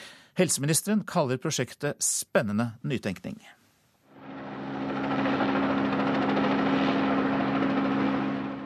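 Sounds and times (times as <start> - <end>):
speech: 0.4 - 3.6
rescue helicopter engine and rotor taking off: 4.1 - 8.6.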